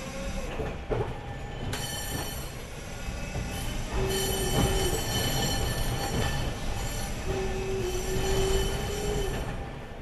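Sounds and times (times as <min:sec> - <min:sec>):
train rumbling on rails: 0:00.0 - 0:10.0
train wheel squeals: 0:03.5 - 0:09.5.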